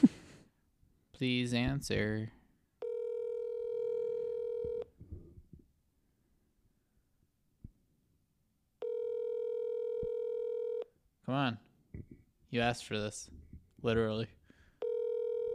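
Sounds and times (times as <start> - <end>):
speech: 1.2 - 2.4, 11.3 - 14.4
outgoing phone call ringback tones: 2.8 - 4.9, 8.8 - 10.8, 14.8 - 15.5.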